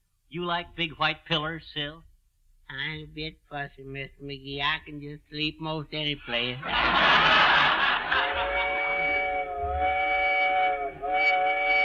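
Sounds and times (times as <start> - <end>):
speech: 0.3 - 2.1, 2.7 - 7.7
laughter: 6.6 - 9.2
train whistle sounding a long sustained tone: 8.1 - 11.8.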